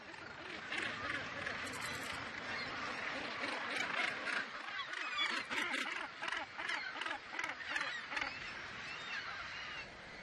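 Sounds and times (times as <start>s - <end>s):
Arctic gull colony squabbling calls: 0.0s - 9.9s.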